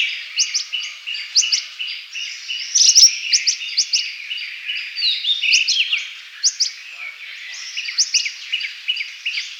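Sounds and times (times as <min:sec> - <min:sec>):
soft overlapping rosy minivet chatter: 0:00.0 - 0:04.5, 0:05.5 - 0:09.5.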